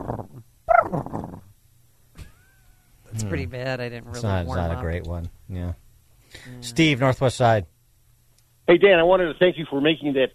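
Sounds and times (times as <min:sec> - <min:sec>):
person imitating a turkey gobble with their voice: 0:00.0 - 0:01.5
speech: 0:03.3 - 0:07.7, 0:08.7 - 0:10.3.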